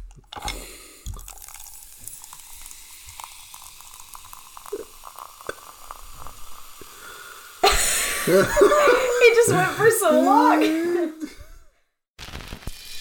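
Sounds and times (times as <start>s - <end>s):
fizzy liquid being poured into a glass: 0.0s - 7.7s
laughter: 7.6s - 11.4s
speech: 8.3s - 10.9s.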